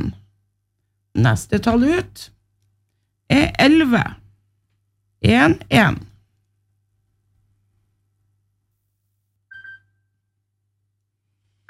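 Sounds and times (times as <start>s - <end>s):
speech: 1.2s - 2.4s, 3.3s - 4.2s, 5.2s - 6.1s
telephone ringing in short electronic bursts: 9.5s - 10.2s.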